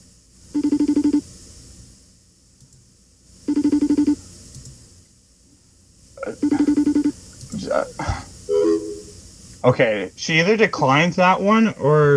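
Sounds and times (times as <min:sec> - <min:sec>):
buzzy phone ringback tone during an outgoing call: 0:00.6 - 0:01.2, 0:03.5 - 0:04.2, 0:06.3 - 0:07.2, 0:08.5 - 0:09.1
voices: 0:06.2 - 0:06.8, 0:07.5 - 0:10.2
speech: 0:07.7 - 0:08.2, 0:09.6 - 0:12.1.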